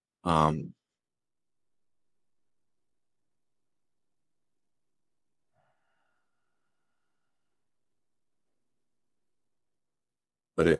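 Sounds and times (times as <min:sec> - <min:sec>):
big open-mouthed breath, inhale and exhale blended: 0:05.5 - 0:07.7.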